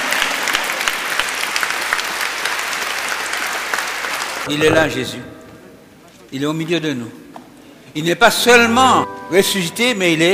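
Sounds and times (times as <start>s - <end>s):
congregation applauding at a church service: 0.0s - 4.5s
speech: 4.5s - 5.3s, 6.3s - 7.2s, 7.9s - 10.3s.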